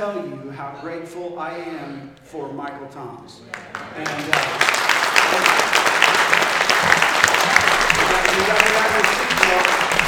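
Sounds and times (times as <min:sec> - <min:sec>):
speech: 0:00.0 - 0:06.2, 0:08.4 - 0:10.0
audience applause: 0:03.5 - 0:10.0.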